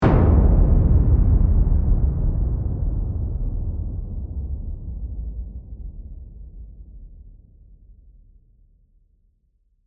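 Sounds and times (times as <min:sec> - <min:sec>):
descending drum hit sound design: 0:00.0 - 0:06.6.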